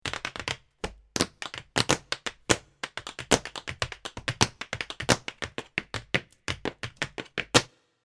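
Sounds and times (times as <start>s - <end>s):
tap dance steps: 0.0s - 7.7s.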